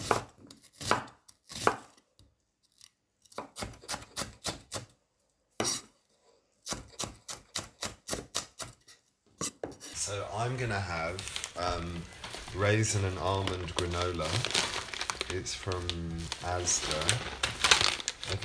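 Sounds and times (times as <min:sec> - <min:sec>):
knife chopping raw onion: 0:00.0 - 0:02.0, 0:03.3 - 0:04.9, 0:05.6 - 0:05.9, 0:06.6 - 0:10.0
speech: 0:10.1 - 0:14.7, 0:15.3 - 0:17.5, 0:18.3 - 0:18.4.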